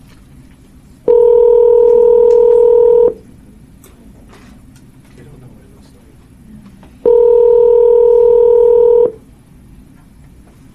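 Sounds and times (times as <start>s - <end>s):
telephone dialing tone electronic beep: 1.1s - 3.2s, 7.0s - 9.2s.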